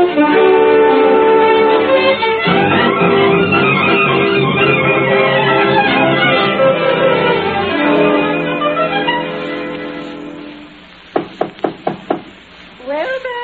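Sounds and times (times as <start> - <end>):
music: 0.0 - 12.3
sharp knocking on a door: 11.2 - 12.4.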